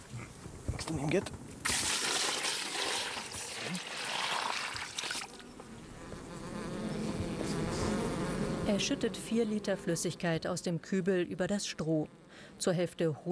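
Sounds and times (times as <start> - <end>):
speech: 0.9 - 1.4, 8.7 - 13.3
honeybees buzzing in a crowded hive: 2.2 - 12.7.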